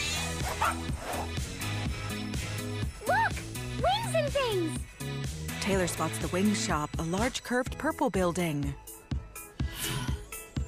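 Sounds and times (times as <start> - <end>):
dog yipping and barking while chasing a cat: 0.4 - 1.3
speech: 0.6 - 9.0.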